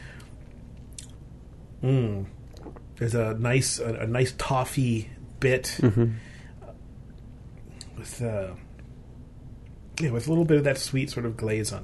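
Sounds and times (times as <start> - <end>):
low steady hum: 0.0 - 11.8
speech: 1.8 - 2.4, 3.0 - 6.3, 8.0 - 8.6, 10.0 - 11.8
person sipping beer: 2.0 - 2.9.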